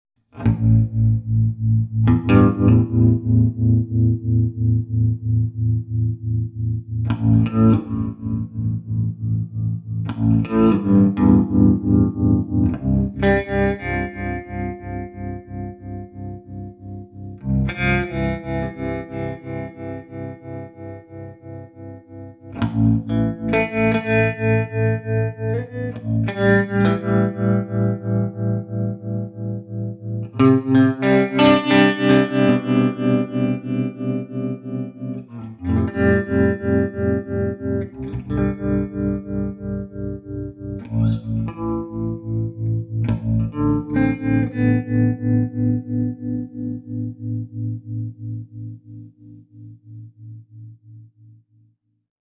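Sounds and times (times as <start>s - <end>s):
clean baritone guitar with tremolo through an amplifier: 0.3s - 51.4s.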